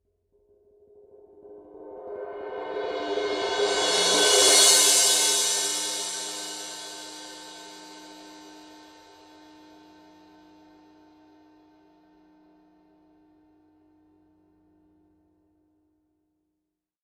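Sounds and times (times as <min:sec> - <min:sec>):
18 power crash cymbal roll on Paiste 2002: 0:02.4 - 0:09.0.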